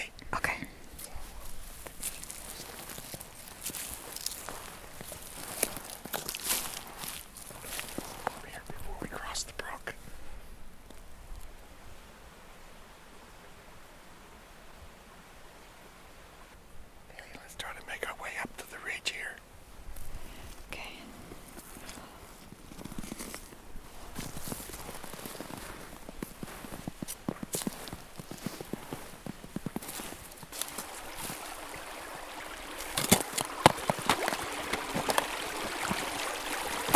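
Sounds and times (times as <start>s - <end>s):
hushed whispering: 0.0s - 1.4s, 8.2s - 10.2s, 17.1s - 19.4s, 20.4s - 21.2s
slow footsteps crunching through woodland brush: 0.9s - 9.4s, 19.8s - 36.9s.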